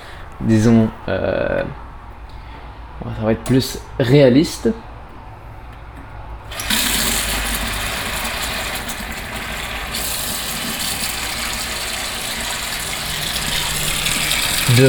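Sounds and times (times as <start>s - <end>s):
speech: 0.4s - 1.9s, 3.0s - 4.9s
running tap water recorded with binaural microphones: 6.5s - 14.8s.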